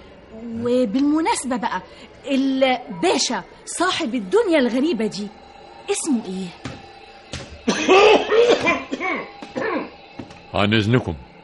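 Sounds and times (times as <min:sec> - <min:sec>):
speech: 0:00.3 - 0:06.7, 0:10.6 - 0:11.3
man coughing harshly: 0:07.7 - 0:10.0.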